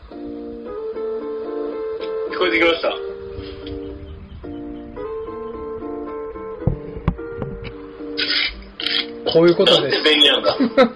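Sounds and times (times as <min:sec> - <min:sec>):
gentle Hawaiian-style music from an Amazon Alexa smart speaker: 0:00.0 - 0:10.9
speech: 0:02.4 - 0:03.1, 0:09.3 - 0:10.9
soft knocks: 0:06.6 - 0:07.8
laughter: 0:09.8 - 0:10.9.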